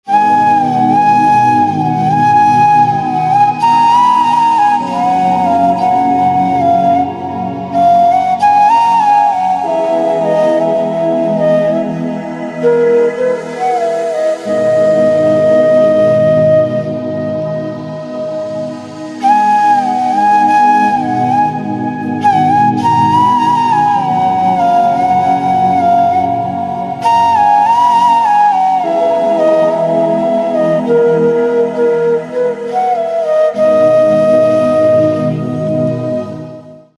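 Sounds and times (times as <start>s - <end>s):
slow flute melody ringtone: 0.0s - 36.9s.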